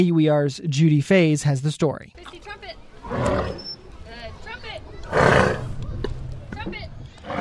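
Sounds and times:
speech: 0.0 - 3.6
African elephants trumpeting and rumbling: 3.0 - 3.7, 5.1 - 5.7.

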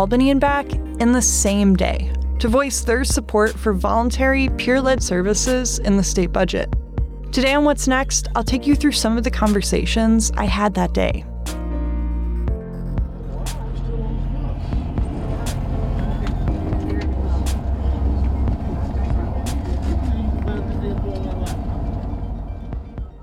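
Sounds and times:
speech: 0.0 - 11.3
bus engine rumble inside a moving bus: 0.0 - 23.2
faint indistinct murmuring: 13.1 - 23.2
road noise inside a moving bus: 13.1 - 23.2.

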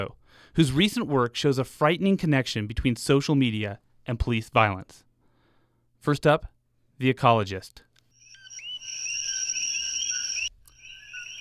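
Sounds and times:
speech: 0.0 - 5.1, 6.0 - 7.9
chorus of Puerto Rican coqui frogs in Hawaii chirping: 8.1 - 11.3.

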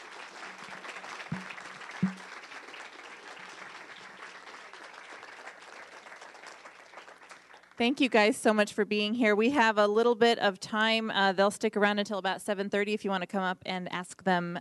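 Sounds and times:
audience applause: 0.0 - 7.8
brief low thumps: 1.3 - 2.3
speech: 7.8 - 14.6.

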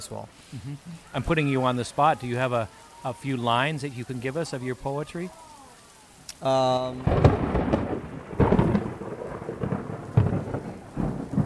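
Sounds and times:
speech: 0.0 - 5.5, 6.4 - 7.6
steady rain in a thunderstorm: 0.0 - 11.4
rolling thunder in a thunderstorm: 6.5 - 11.4.

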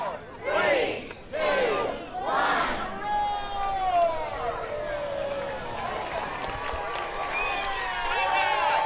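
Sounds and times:
crowd shouting a countdown at a tiger sculpture unveiling: 0.0 - 3.3
crowd cheering, whooping and shouting at a sculpture unveiling: 1.4 - 8.8.

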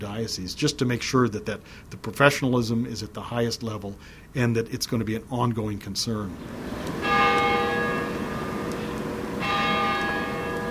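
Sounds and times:
speech: 0.0 - 7.3
two big cathedral church bells tolling: 6.5 - 10.7.

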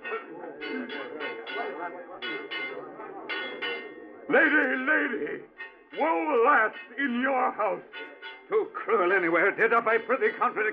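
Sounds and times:
metallic alarm bell clanging to raise the alarm of murder and treason: 0.0 - 4.2
speech: 1.9 - 2.6, 4.3 - 10.7.

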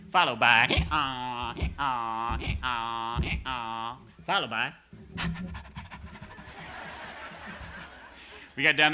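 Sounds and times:
speech: 0.1 - 5.5, 8.6 - 8.9
voice imitating a dog panting: 5.2 - 6.4
laughter: 5.9 - 8.6.

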